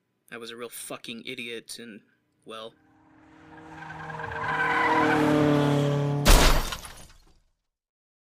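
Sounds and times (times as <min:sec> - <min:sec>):
speech: 0:00.3 - 0:02.8
car tires screeching in a long rising skid: 0:02.8 - 0:06.7
car crash impact with shattering debris: 0:03.6 - 0:07.4.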